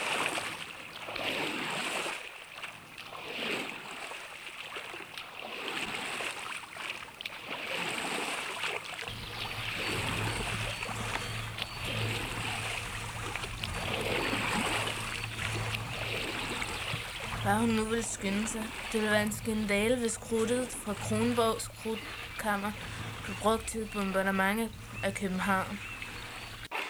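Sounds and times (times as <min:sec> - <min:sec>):
small boat moving across water with sloshing and lapping: 0:00.0 - 0:26.7
low constant rumble: 0:09.1 - 0:26.7
speech: 0:17.5 - 0:25.9.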